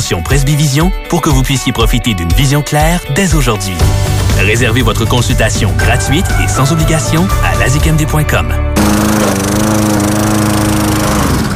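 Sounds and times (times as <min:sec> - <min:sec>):
speech: 0:00.1 - 0:11.2
lawn mower engine running: 0:08.8 - 0:11.5.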